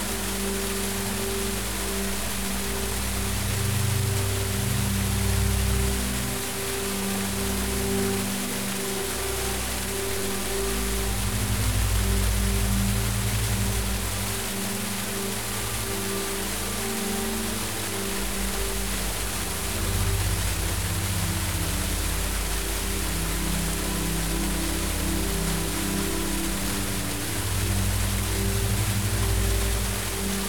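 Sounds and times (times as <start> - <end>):
tropical waterfall pouring in a dense rush: 0.0 - 30.4.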